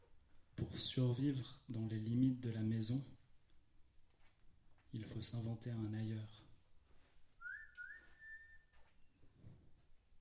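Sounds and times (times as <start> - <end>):
speech: 0.8 - 3.2, 4.9 - 6.5
person whistling a short melodic phrase: 7.4 - 8.8.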